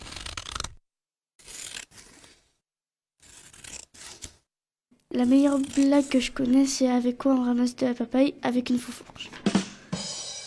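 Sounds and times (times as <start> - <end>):
scissors slicing through paper: 0.0 - 0.8, 1.4 - 2.5, 3.2 - 4.5, 5.1 - 6.7
speech: 5.1 - 9.5.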